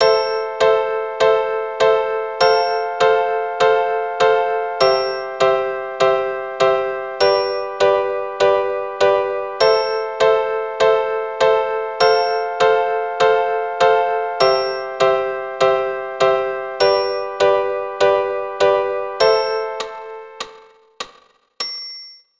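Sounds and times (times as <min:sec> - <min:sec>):
keyboard playing Am F C G chord progression: 0:00.0 - 0:20.5.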